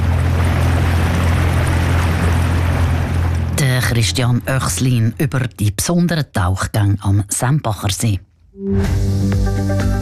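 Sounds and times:
constant wash of rushing water: 0.0 - 5.0
motorboat engine droning heading out onto a lake: 0.0 - 5.5
speech: 3.9 - 10.0.

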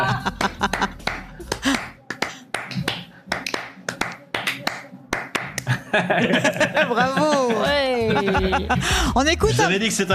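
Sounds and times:
laughter: 0.0 - 1.9, 5.6 - 9.4
hands clapping a Spanish-style syncopated rhythm: 0.0 - 5.8
speech: 6.0 - 10.1.

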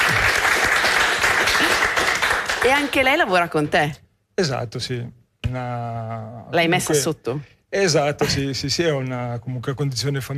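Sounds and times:
audience applause from a crowd: 0.0 - 3.2
speech: 2.6 - 10.3.

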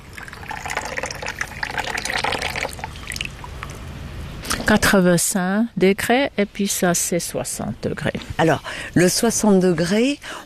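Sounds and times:
water poured to make matcha tea: 0.0 - 3.7
speech: 4.7 - 10.4.

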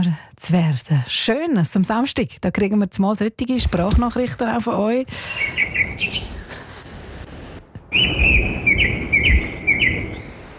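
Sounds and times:
rumbling background: 0.0 - 10.5
speech: 0.1 - 6.3, 7.9 - 8.5
birds chirping and singing outdoors: 5.2 - 6.6, 7.9 - 10.5.

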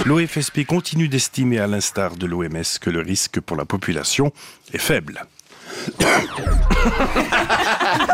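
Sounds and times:
speech: 0.0 - 8.1
rough gravelly throat-clearing rasp: 6.0 - 7.0
loud cough: 6.0 - 7.6
laughter: 6.4 - 8.1.

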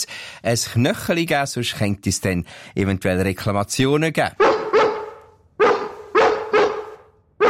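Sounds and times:
speech: 0.4 - 4.6
dog barking: 4.4 - 7.4.

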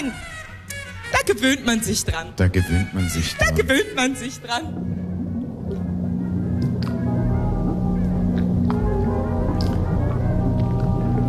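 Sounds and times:
speech: 0.0 - 0.3, 1.3 - 5.0
water bubbling in knee-deep water: 0.0 - 11.2
water dripping: 3.2 - 11.2.

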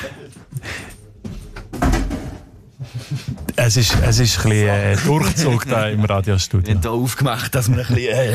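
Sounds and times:
door being shut: 1.7 - 2.5
speech: 3.7 - 8.3.

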